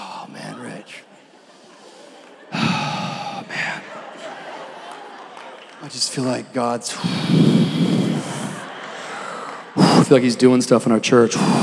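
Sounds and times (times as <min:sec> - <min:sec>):
laughter: 0:00.0 - 0:11.6
person imitating exaggerated heavy breathing: 0:02.5 - 0:03.9, 0:07.0 - 0:08.6, 0:09.8 - 0:10.2, 0:11.3 - 0:11.6
speech: 0:05.8 - 0:07.8, 0:10.1 - 0:11.6.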